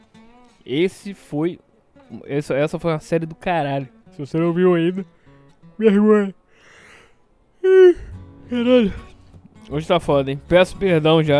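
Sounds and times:
speech: 0:00.6 - 0:05.2, 0:05.8 - 0:06.4, 0:07.6 - 0:09.1, 0:09.7 - 0:11.3
person yawning: 0:07.6 - 0:09.1.

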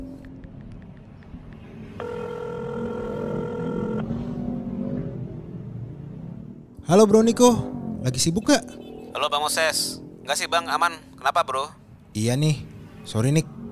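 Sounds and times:
telephone ringing tone of an outgoing call: 0:02.0 - 0:04.1
speech: 0:06.9 - 0:13.5.

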